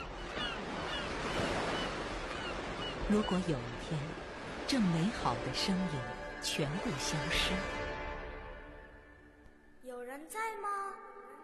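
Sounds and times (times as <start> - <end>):
sea waves roaring surf: 0.0 - 8.9
speech: 3.1 - 7.8.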